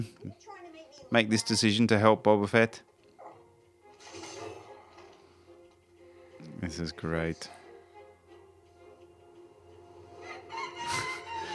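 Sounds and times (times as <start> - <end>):
speech: 1.1 - 2.9, 6.6 - 7.6
creature making a rooster-like crowing call: 10.2 - 11.5.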